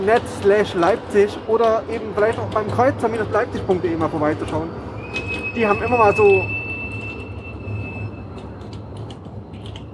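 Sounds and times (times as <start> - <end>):
speech: 0.0 - 6.6
tram rumbling past: 0.0 - 9.9
tram wheels whistling squeal: 2.0 - 8.7
metallic screeches: 3.5 - 8.5.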